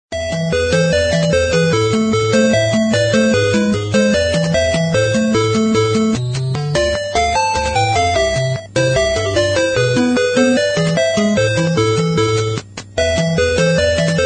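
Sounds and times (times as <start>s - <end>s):
ringtone from a block puzzle game: 0.1s - 14.2s.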